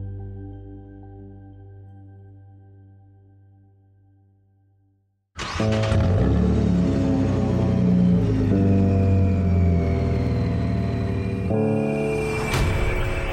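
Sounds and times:
powerful luxury car engine revving in a commercial: 5.4s - 13.3s.

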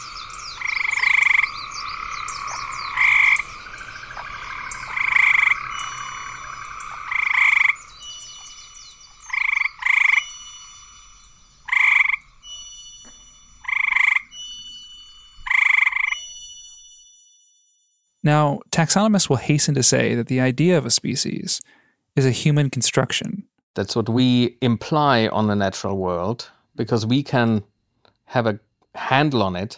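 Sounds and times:
loud frog giving short rasping calls: 0.0s - 12.6s, 13.6s - 14.4s, 15.4s - 16.2s
speech: 18.2s - 27.7s, 28.3s - 29.7s.

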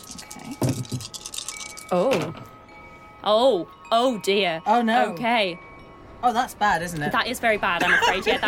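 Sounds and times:
four dice rolled across a hard surface: 0.0s - 1.9s
speech: 1.9s - 2.5s, 3.2s - 8.4s.

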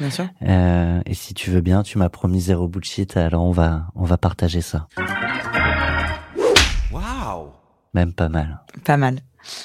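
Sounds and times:
speech: 0.0s - 5.6s, 7.9s - 9.6s
sharp loud slap sound effect: 6.4s - 7.4s.

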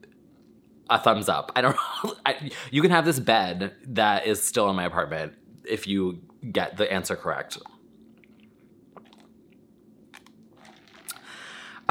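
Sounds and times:
speech: 0.9s - 7.7s
sipping iced coffee: 7.6s - 11.8s
ice clicking in iced coffee: 10.1s - 11.3s.

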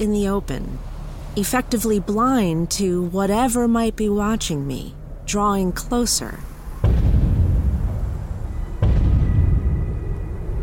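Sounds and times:
speech: 0.0s - 6.5s
enormous thunderous footsteps with deep booming rumble: 6.8s - 10.6s.

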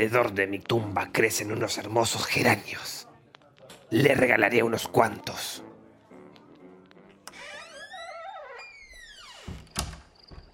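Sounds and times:
speech: 0.0s - 3.0s, 3.9s - 5.7s
door swinging on a long creaking hinge: 7.3s - 10.5s
door shutting with a solid thump and a brief rattle: 9.3s - 10.5s.

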